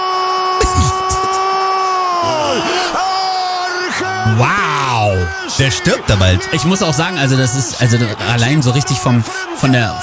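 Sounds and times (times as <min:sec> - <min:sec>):
man screaming in a strained voice: 0:00.0 - 0:05.6
speech: 0:04.2 - 0:10.0.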